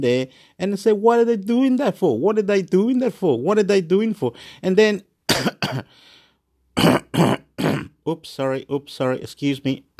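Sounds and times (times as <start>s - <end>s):
speech: 0.0s - 6.1s, 8.0s - 9.9s
throat clearing: 5.3s - 5.9s, 6.8s - 8.0s.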